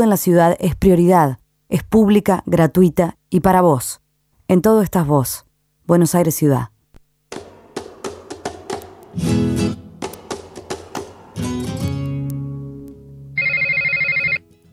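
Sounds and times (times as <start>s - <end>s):
speech: 0.0s - 6.7s, 9.2s - 9.6s
telephone ringing with an electronic trill: 13.4s - 14.4s.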